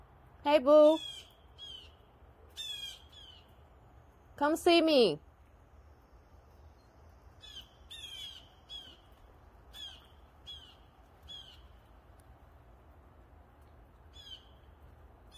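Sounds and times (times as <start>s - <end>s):
low outdoor rumble: 0.0s - 15.3s
speech: 0.4s - 1.1s, 4.4s - 5.3s
birds calling harshly: 0.8s - 3.6s, 7.4s - 11.8s, 14.1s - 14.7s.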